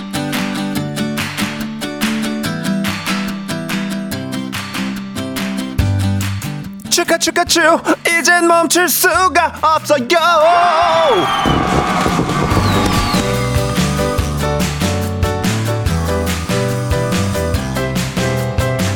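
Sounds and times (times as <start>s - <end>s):
loud bouncy music track with a steady beat: 0.0s - 10.6s, 12.5s - 18.9s
speech: 7.0s - 12.1s
crowd cheering: 10.4s - 14.4s
whistling firework streaking down: 10.9s - 14.3s.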